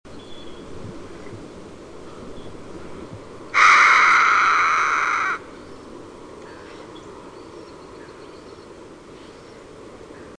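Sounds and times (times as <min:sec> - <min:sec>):
Harris's hawk Parabuteo unicinctus calling: 0:03.6 - 0:05.4.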